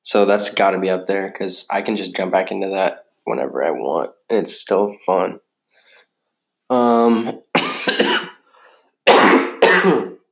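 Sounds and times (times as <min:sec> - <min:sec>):
speech: 0:00.1 - 0:05.4, 0:06.7 - 0:08.2
voiced throat-clearing grunt: 0:06.8 - 0:08.4, 0:09.1 - 0:10.2
loud harsh coughs: 0:07.2 - 0:08.4, 0:09.1 - 0:10.2.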